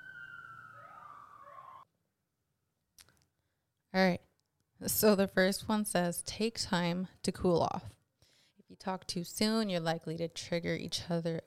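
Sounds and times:
siren of a passing emergency vehicle: 0:00.0 - 0:01.9
speech: 0:03.9 - 0:04.2, 0:04.8 - 0:08.0, 0:08.7 - 0:11.4.

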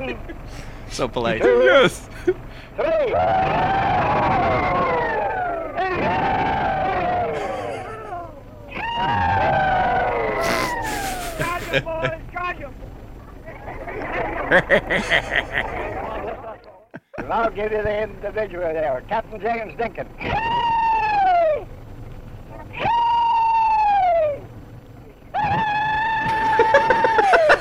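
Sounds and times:
speech: 0:00.0 - 0:04.8, 0:11.7 - 0:12.2, 0:14.5 - 0:16.0, 0:17.3 - 0:20.6
crowd laughing: 0:00.0 - 0:12.4, 0:13.4 - 0:17.6, 0:26.2 - 0:27.5
crowd attempting the old rebel yell: 0:02.7 - 0:12.1, 0:13.4 - 0:16.7, 0:20.2 - 0:21.7, 0:22.5 - 0:24.5, 0:25.3 - 0:27.5.

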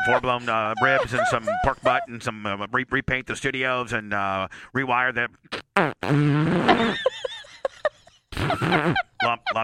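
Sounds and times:
laughter: 0:00.0 - 0:02.2, 0:06.7 - 0:09.6
speech: 0:00.0 - 0:07.1, 0:08.5 - 0:09.6
long loud rippling fart: 0:05.5 - 0:07.0, 0:08.4 - 0:09.0.

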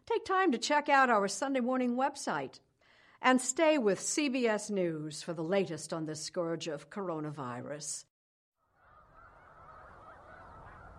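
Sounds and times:
speech: 0:00.2 - 0:08.1
snow geese honking: 0:08.8 - 0:10.9.

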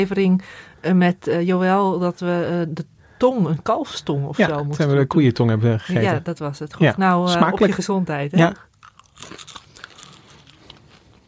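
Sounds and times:
speech: 0:00.0 - 0:09.6
biting and chewing tough wings: 0:08.7 - 0:11.2.

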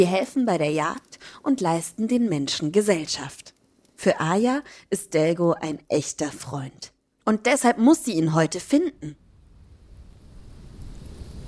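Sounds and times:
speech: 0:00.0 - 0:09.2
soft steady rain: 0:00.0 - 0:11.4.

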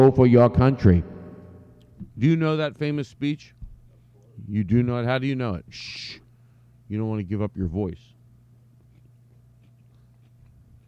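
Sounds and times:
speech: 0:00.0 - 0:01.1, 0:02.2 - 0:03.6, 0:04.4 - 0:06.2, 0:06.9 - 0:08.1
steady low hum: 0:00.0 - 0:10.8
person chewing food with crunches and wet clicks: 0:08.8 - 0:10.8.

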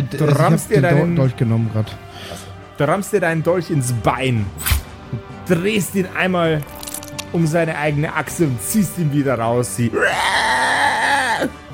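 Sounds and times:
speech: 0:00.1 - 0:10.7, 0:11.4 - 0:11.6
voice imitating a creature's pitiful drawn-out squeal: 0:09.9 - 0:11.6.

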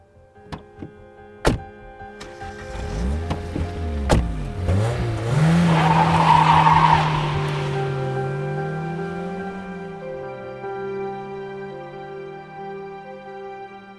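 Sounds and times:
car doors slamming: 0:00.4 - 0:05.3
car tires screeching as it tears away at full speed: 0:02.2 - 0:10.5
red car engine revving hard: 0:02.2 - 0:10.6.

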